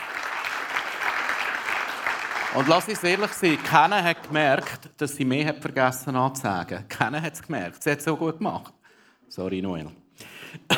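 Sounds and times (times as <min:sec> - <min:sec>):
audience applause: 0:00.0 - 0:04.8
speech: 0:02.5 - 0:10.7.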